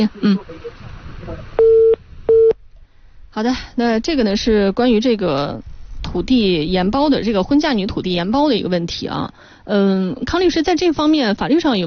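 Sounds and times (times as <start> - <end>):
speech: 0.0 - 0.6, 3.4 - 11.8
telephone busy tone after a call is hung up: 1.6 - 2.6.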